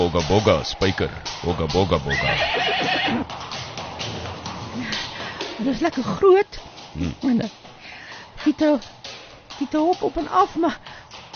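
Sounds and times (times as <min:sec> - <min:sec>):
speech: 0:00.0 - 0:03.5, 0:05.6 - 0:07.6, 0:08.4 - 0:09.0, 0:09.6 - 0:10.9
horse hooves clip-clopping: 0:00.0 - 0:11.3
steady noisy background: 0:00.0 - 0:11.3
horses whinnying and neighing: 0:02.1 - 0:03.4.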